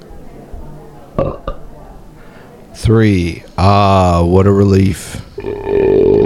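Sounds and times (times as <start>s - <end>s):
speech: 1.2s - 1.5s, 2.8s - 5.7s
loud belch: 1.2s - 1.6s, 5.4s - 6.2s
gulp: 5.4s - 6.2s.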